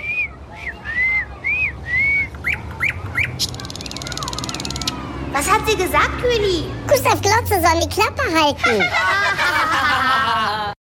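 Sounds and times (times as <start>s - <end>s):
nightingale singing in a city: 0.0s - 5.0s
speech: 5.7s - 9.6s
laughter: 8.6s - 10.8s.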